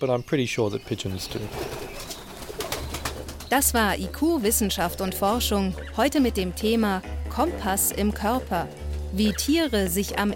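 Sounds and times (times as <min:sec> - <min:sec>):
speech: 0:00.0 - 0:01.8, 0:03.5 - 0:10.3
several pigeons cooing: 0:00.8 - 0:03.8.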